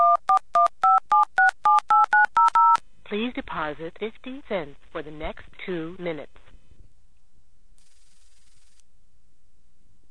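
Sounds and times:
touch-tone dialing beeps from a payphone placing a long-distance call: 0:00.0 - 0:02.8
speech: 0:03.1 - 0:06.4.

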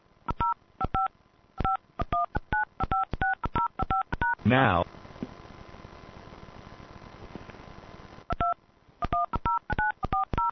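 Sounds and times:
telephone keypad DTMF beeps dialing a phone number: 0:00.4 - 0:04.4, 0:08.3 - 0:10.5
speech: 0:04.5 - 0:04.9.

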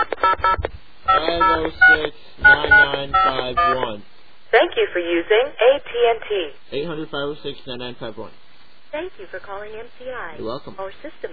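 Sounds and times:
touch-tone beeps of phone number being dialed: 0:00.0 - 0:03.9
speech: 0:01.4 - 0:11.3.

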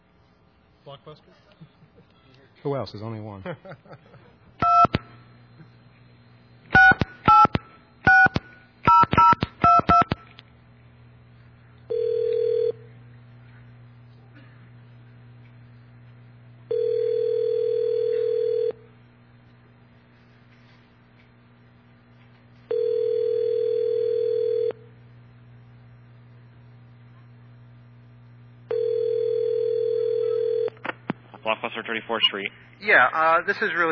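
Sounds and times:
low steady hum: 0:00.0 - 0:33.9
speech: 0:00.8 - 0:04.4, 0:31.8 - 0:33.9
laughter: 0:03.4 - 0:04.5
telephone keypad tones dialing a video store: 0:06.8 - 0:10.2, 0:11.9 - 0:12.8, 0:16.7 - 0:18.8, 0:22.7 - 0:24.8, 0:28.7 - 0:30.8
telephone ringback tones: 0:11.9 - 0:12.9, 0:16.7 - 0:18.8, 0:22.7 - 0:24.8, 0:28.7 - 0:30.8.

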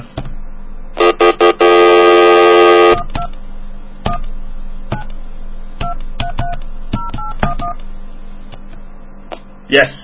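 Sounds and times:
long harsh telephone tone: 0:01.0 - 0:03.1
touch-tone phone keypad beeps: 0:05.8 - 0:07.8.

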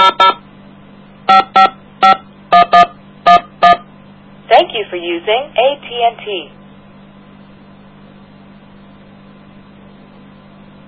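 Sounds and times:
touch-tone telephone dialing beeps on a telephone line: 0:00.0 - 0:00.4, 0:01.3 - 0:03.8
faint steady hum: 0:00.0 - 0:10.8
speech: 0:05.1 - 0:06.6.

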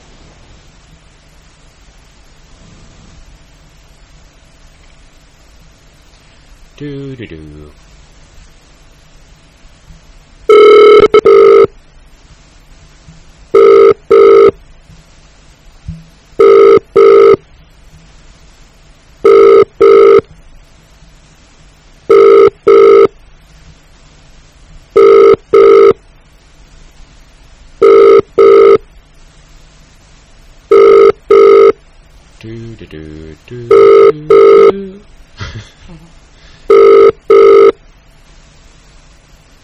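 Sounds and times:
speech: 0:06.8 - 0:07.9, 0:32.9 - 0:34.2
telephone ringing with bright electronic trills: 0:10.5 - 0:11.7, 0:13.6 - 0:14.6, 0:16.4 - 0:17.4, 0:19.2 - 0:20.2, 0:22.1 - 0:23.1, 0:25.0 - 0:26.0, 0:27.8 - 0:28.8, 0:30.7 - 0:31.8, 0:33.7 - 0:34.8, 0:36.7 - 0:37.8.

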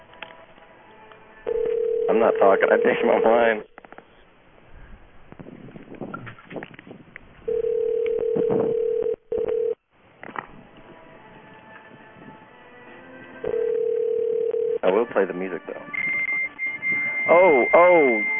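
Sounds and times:
narrow hissy phone line: 0:01.5 - 0:03.8, 0:07.5 - 0:09.8, 0:13.4 - 0:14.8, 0:15.8 - 0:18.3
speech: 0:02.2 - 0:03.7
modem answering a call with electronic whistles and tones: 0:15.8 - 0:18.3.

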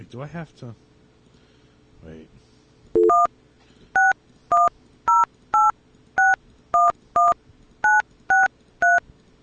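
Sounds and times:
speech: 0:00.1 - 0:00.9, 0:02.0 - 0:02.5
touch-tone telephone dialing beeps: 0:03.0 - 0:03.3, 0:04.0 - 0:09.0.

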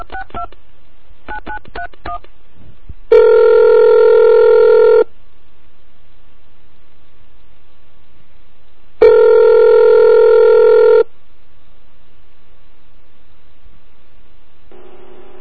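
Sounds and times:
telephone ring tones over a phone line: 0:03.1 - 0:05.1, 0:09.0 - 0:11.1.

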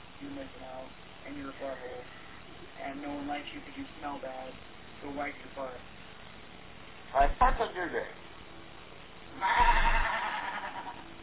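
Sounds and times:
speech: 0:00.2 - 0:06.0, 0:07.1 - 0:08.2, 0:09.4 - 0:10.1
sheep bleating: 0:09.3 - 0:11.0.

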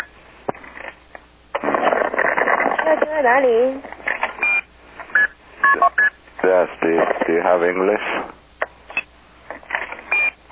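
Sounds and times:
crackly bursts of phone line noise: 0:00.0 - 0:10.5
speech: 0:02.9 - 0:03.9, 0:05.7 - 0:08.4
short electronic beeps over a muffled phone line: 0:04.4 - 0:06.2, 0:10.1 - 0:10.4.

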